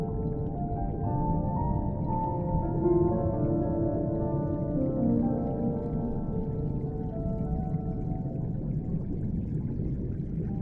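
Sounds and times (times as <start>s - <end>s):
soft classical piano: 0.0s - 9.2s
underwater ambience: 0.0s - 10.6s.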